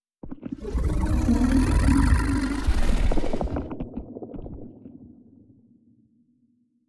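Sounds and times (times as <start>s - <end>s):
space dragon idling: 0.6s - 3.7s.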